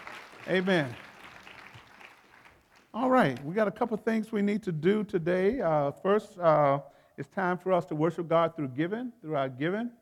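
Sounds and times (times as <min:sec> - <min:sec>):
church audience applauding: 0:00.0 - 0:03.0
speech: 0:00.5 - 0:01.0, 0:02.9 - 0:10.0.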